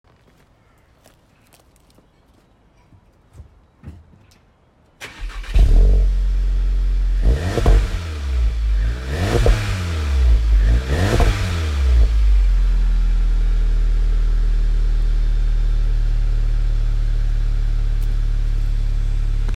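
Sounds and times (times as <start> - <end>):
VW GTI car engine: 5.0 - 19.5.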